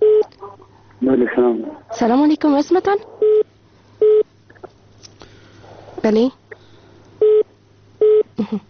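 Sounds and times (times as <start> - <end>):
speech: 1.0 - 3.2, 6.0 - 6.4
telephone beeps after a dropped call: 4.0 - 4.2, 7.2 - 7.4, 8.0 - 8.2.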